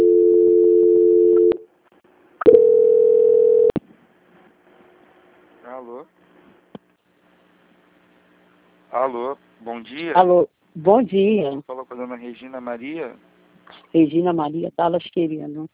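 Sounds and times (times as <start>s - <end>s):
telephone line tones during a bank call transfer: 0.0s - 1.6s, 2.4s - 3.8s
speech: 9.1s - 13.3s, 13.9s - 15.7s.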